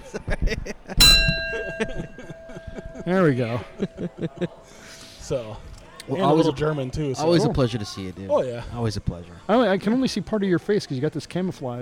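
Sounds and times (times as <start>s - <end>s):
speech: 0.1s - 0.8s, 3.1s - 4.6s, 5.3s - 11.8s
bell being struck: 1.0s - 5.2s.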